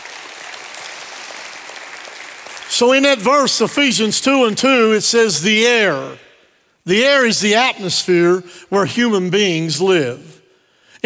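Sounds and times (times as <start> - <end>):
audience clapping hands in praise: 0.0 - 3.2
speech: 2.8 - 10.3.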